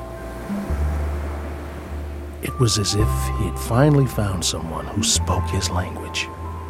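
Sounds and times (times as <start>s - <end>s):
ocean surf waves washing onto a beach: 0.0s - 2.8s
speech: 2.5s - 6.4s.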